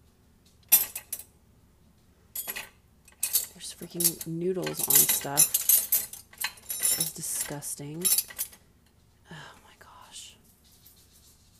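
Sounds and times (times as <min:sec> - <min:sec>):
silverware clinking and rattling in a dishwasher: 0:00.7 - 0:01.3, 0:02.4 - 0:08.6
speech: 0:03.6 - 0:05.6, 0:07.0 - 0:08.4.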